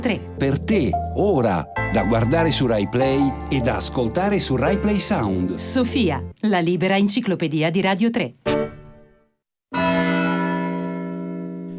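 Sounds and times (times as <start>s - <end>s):
speech: 0.0s - 8.6s
church bell striking one o'clock: 9.7s - 11.7s.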